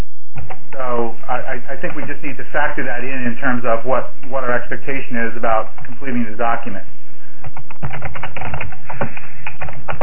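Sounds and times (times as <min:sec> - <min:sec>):
rapid keyboard typing: 0:00.4 - 0:00.8, 0:07.4 - 0:10.0
speech: 0:00.7 - 0:10.0.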